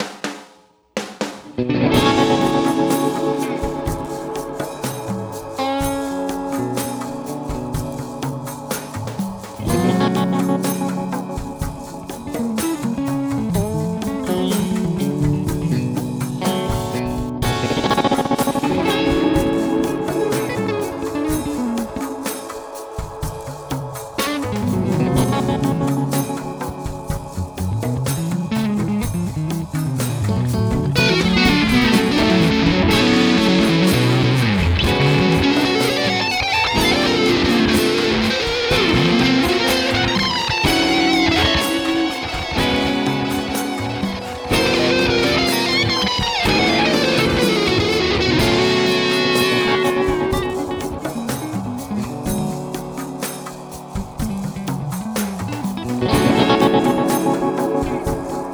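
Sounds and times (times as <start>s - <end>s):
Stratocaster electric guitar: 1.4s - 58.5s.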